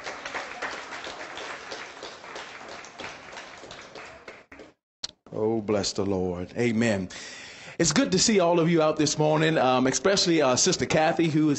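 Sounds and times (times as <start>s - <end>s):
audience clapping hands in praise to God: 0.0s - 4.8s
speech: 5.4s - 11.5s.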